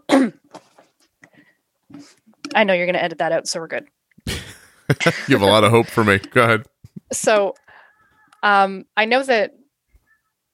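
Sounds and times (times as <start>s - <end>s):
harsh cough: 0.1s - 0.4s, 4.3s - 5.4s
speech: 2.0s - 4.0s, 4.9s - 7.6s, 8.4s - 9.6s
laughter: 4.3s - 6.6s.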